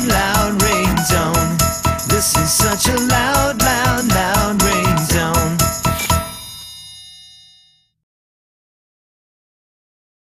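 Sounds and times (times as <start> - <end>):
loud bouncy electronic phone ringtone jingle with synth melody: 0.2 - 7.9.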